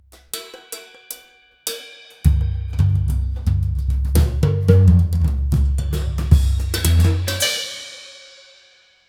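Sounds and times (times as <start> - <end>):
African drum roll: 2.3 - 8.0.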